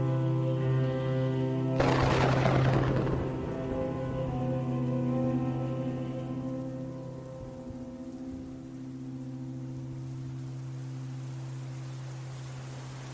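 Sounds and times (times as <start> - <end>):
rain pattering onto a hard surface: 0.0 - 13.1
steady sustained musical drone: 0.0 - 13.1.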